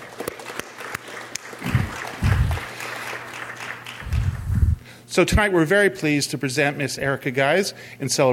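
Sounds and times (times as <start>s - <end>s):
audience applause: 0.0s - 4.7s
speech: 5.2s - 8.3s.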